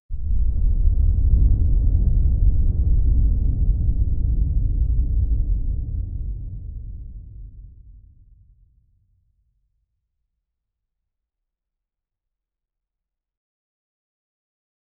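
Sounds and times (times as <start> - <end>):
low rumble of thunder: 0.2 - 8.2.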